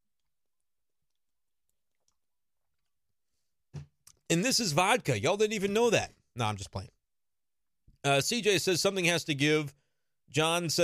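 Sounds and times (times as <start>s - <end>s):
person taking a long sip of a drink: 0.0s - 3.3s
speech: 4.3s - 7.0s, 8.0s - 10.8s.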